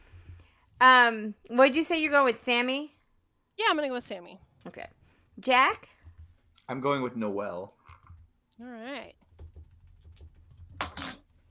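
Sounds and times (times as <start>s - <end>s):
speech: 0.8s - 3.0s, 3.6s - 5.9s, 6.7s - 7.8s, 8.6s - 9.2s
soft quick typing on a computer keyboard: 6.0s - 6.3s, 7.9s - 8.3s, 9.1s - 11.4s.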